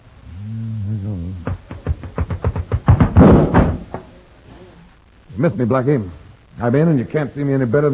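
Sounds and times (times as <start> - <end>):
sharp knocking thuds: 1.4 - 4.1
door slamming shut: 2.9 - 4.1
speech: 5.4 - 7.9.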